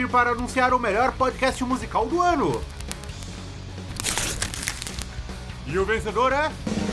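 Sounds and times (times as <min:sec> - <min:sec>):
speech: 0:00.0 - 0:02.8, 0:05.7 - 0:06.8
paper envelope crinkling and tearing as it is opened: 0:02.5 - 0:03.3, 0:03.9 - 0:05.2.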